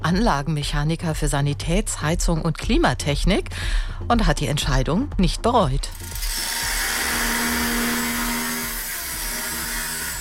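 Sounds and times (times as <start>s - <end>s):
speech: 0.1s - 6.5s
power tool drilling at a construction site in Großkreuz: 5.9s - 10.1s.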